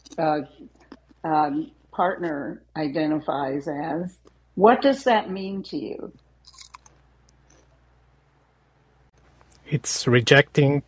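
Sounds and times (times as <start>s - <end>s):
low steady hum: 0.0s - 10.8s
speech: 0.2s - 6.2s, 9.7s - 10.8s
person chewing nuts: 6.5s - 6.9s.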